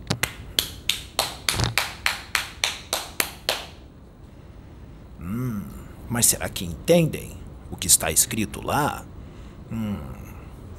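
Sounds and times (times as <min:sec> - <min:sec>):
single person clapping slowly: 0:00.0 - 0:03.8
speech: 0:06.1 - 0:10.2.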